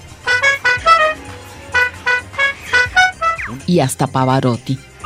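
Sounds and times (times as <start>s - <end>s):
lyrebird imitating a car horn: 0.3s - 3.6s
speech: 3.6s - 4.9s.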